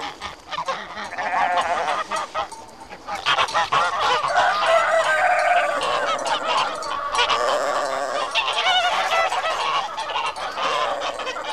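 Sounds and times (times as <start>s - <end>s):
ducks quacking loudly in a poultry yard: 0.0s - 11.5s.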